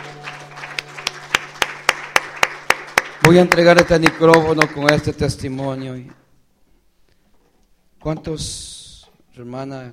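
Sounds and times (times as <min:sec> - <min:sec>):
congregation clapping at a church service: 0:00.0 - 0:05.5
speech: 0:03.2 - 0:06.2, 0:08.0 - 0:08.8, 0:09.4 - 0:09.9.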